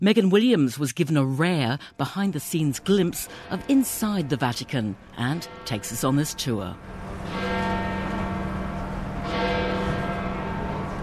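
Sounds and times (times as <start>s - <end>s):
speech: 0.0s - 7.4s
large church bells tolling: 2.0s - 11.0s.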